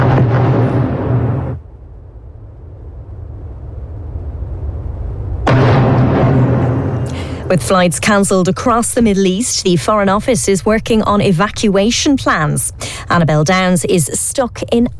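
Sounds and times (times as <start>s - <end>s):
heavy roaring explosions in a city: 0.0s - 10.3s
speech: 7.5s - 14.9s.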